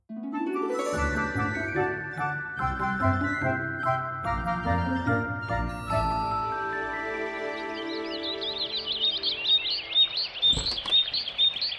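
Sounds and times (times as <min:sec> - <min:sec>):
bright music: 0:00.1 - 0:09.5
dense chorus of birds chirping and singing: 0:06.8 - 0:11.7.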